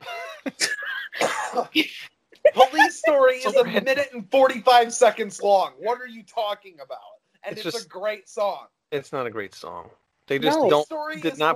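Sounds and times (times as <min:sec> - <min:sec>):
laughter: 0:00.0 - 0:01.9, 0:02.5 - 0:06.5, 0:07.5 - 0:08.1, 0:10.4 - 0:11.5
strained voiced sounds: 0:00.0 - 0:11.5
coughing into a towel: 0:00.6 - 0:01.7
speech: 0:01.6 - 0:11.5.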